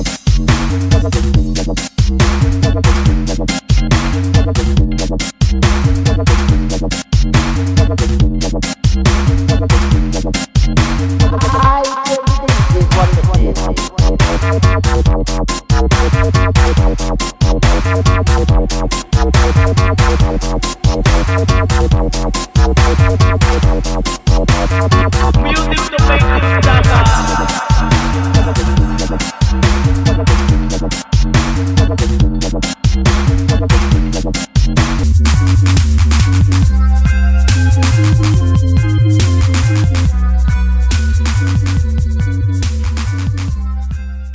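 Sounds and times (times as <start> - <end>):
dubstep samples: 0.0 - 44.3.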